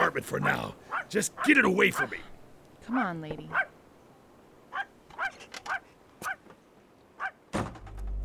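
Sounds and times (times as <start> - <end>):
speech: 0.1 - 2.3, 2.9 - 3.7
dog barking sharply: 0.4 - 2.2, 3.5 - 3.7, 4.7 - 6.4, 7.2 - 7.4
thud: 7.5 - 8.1.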